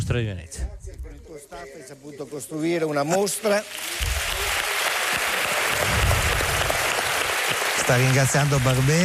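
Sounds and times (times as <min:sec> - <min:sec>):
speech: 0:00.1 - 0:00.8, 0:01.4 - 0:05.2, 0:07.9 - 0:09.0
large audience applauding in a hall: 0:03.4 - 0:09.0.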